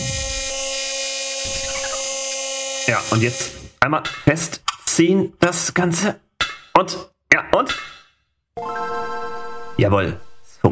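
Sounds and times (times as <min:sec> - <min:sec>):
power drill drilling: 0:00.0 - 0:03.8
speech: 0:02.9 - 0:06.2, 0:06.8 - 0:07.9, 0:08.6 - 0:10.7.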